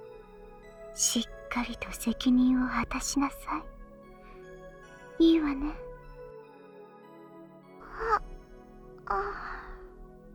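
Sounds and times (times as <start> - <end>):
speech: 1.0 - 3.7, 5.2 - 5.9, 9.1 - 9.4
woman yawning: 7.8 - 8.3, 9.1 - 9.8.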